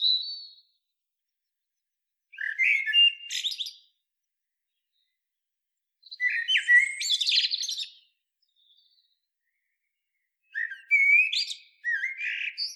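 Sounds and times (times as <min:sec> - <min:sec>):
Eurasian blackbird Turdus merula singing: 0:00.0 - 0:00.8, 0:02.3 - 0:04.0, 0:06.0 - 0:12.7.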